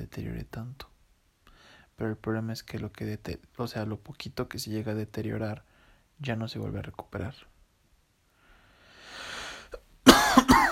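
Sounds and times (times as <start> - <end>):
speech: 0.2 - 0.9, 2.0 - 7.5
person inhaling softly: 1.4 - 2.0, 5.6 - 6.1, 8.3 - 9.8
ill person coughing: 10.0 - 10.6.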